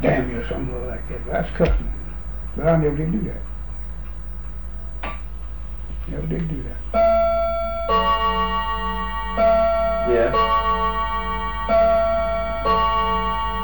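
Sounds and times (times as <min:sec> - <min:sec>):
speech: 0:00.0 - 0:02.0, 0:02.6 - 0:03.5, 0:06.1 - 0:07.2, 0:07.9 - 0:08.7, 0:09.4 - 0:10.8
clock striking resonant chimes: 0:06.9 - 0:13.6.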